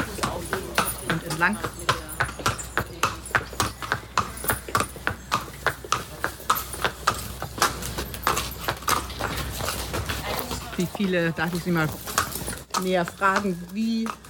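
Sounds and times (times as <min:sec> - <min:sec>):
horse hooves clip-clopping on a hard surface: 0:00.0 - 0:14.2
speech: 0:01.4 - 0:01.9, 0:10.8 - 0:12.1, 0:12.8 - 0:14.2.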